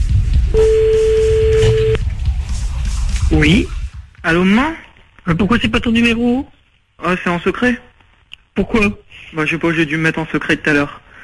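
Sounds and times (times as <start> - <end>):
low noise: 0.4 - 11.2
telephone tone while dialing: 0.6 - 2.0
speech: 3.4 - 7.9, 8.6 - 11.0.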